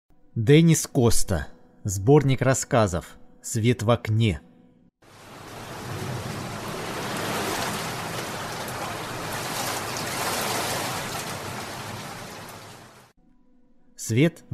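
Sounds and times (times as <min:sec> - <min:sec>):
speech: 0:00.4 - 0:04.5, 0:14.1 - 0:14.5
heavy rain: 0:05.0 - 0:13.1
deep thunder rumbling: 0:05.1 - 0:13.1.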